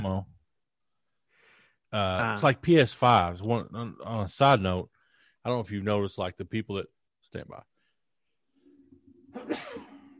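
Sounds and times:
speech: 0:01.9 - 0:07.7, 0:09.3 - 0:09.8
person sneezing: 0:09.4 - 0:10.1.

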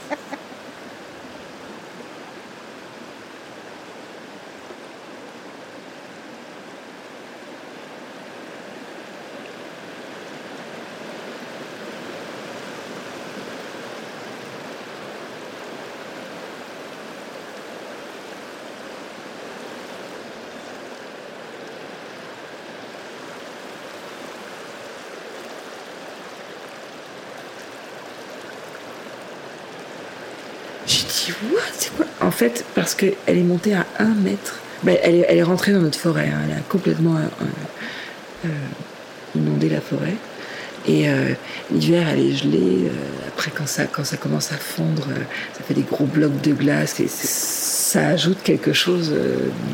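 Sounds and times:
river rushing: 0:00.0 - 0:49.7
speech: 0:30.9 - 0:37.8, 0:39.8 - 0:47.3, 0:47.9 - 0:49.7.

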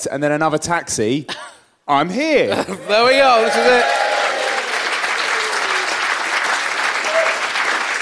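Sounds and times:
speech: 0:00.0 - 0:04.1
live audience applauding: 0:02.8 - 0:07.9
faint voices and whoops: 0:02.9 - 0:06.0.

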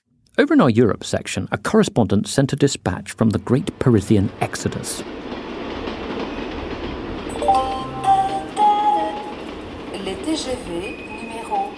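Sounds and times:
speech: 0:00.4 - 0:05.2, 0:10.4 - 0:11.1
rumble of trains including high-speed TGVs in France: 0:02.8 - 0:11.7
metallic train wheel and brake squeals: 0:06.2 - 0:06.7, 0:10.6 - 0:11.7.

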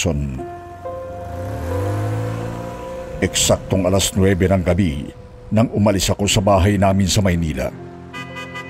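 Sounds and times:
speech: 0:00.0 - 0:00.5, 0:03.2 - 0:07.9
old black sedan engine revving as it sets off from a house in Manila: 0:00.8 - 0:06.5.

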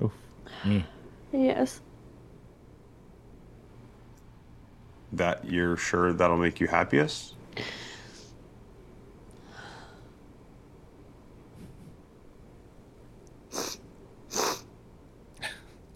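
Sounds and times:
speech: 0:00.0 - 0:01.9, 0:05.1 - 0:07.9
wet sniffles: 0:13.5 - 0:14.6
breathy snuffles: 0:13.5 - 0:14.7.

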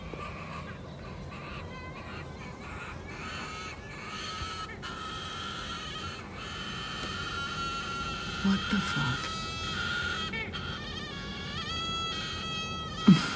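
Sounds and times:
long wavering groan-like bird call ending in gargle: 0:00.0 - 0:13.3
person exclaiming: 0:08.4 - 0:09.3, 0:13.1 - 0:13.3
speech: 0:08.4 - 0:09.3.

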